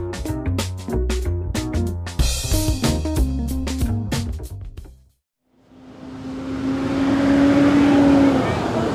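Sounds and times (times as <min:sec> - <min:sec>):
music: 0:00.0 - 0:05.2
school bus engine rumbling as it pulls up and idles: 0:05.9 - 0:08.9.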